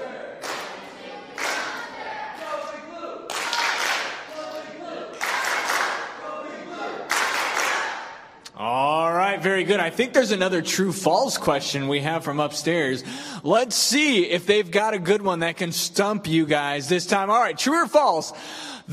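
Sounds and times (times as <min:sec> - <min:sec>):
blue team cheering: 0:00.0 - 0:08.4
speech: 0:09.4 - 0:18.9.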